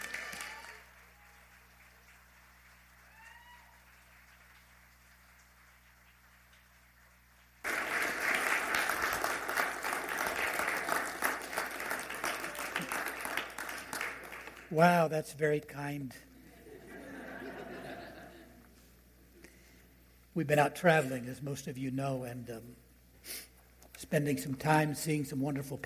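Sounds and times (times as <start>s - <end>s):
audience applause: 0.0s - 14.9s
quiet room hum: 0.0s - 25.8s
speech: 14.7s - 16.3s, 20.4s - 23.4s, 24.1s - 25.8s
laughter: 16.4s - 18.7s.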